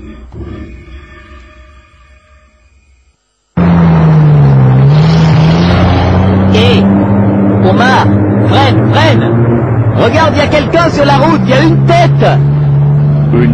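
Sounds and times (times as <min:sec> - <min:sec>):
loud rumbling engine drone with wavering pitch: 0:00.0 - 0:13.5
heavy truck engine humming and winding down: 0:03.6 - 0:13.5
speech: 0:10.2 - 0:12.5.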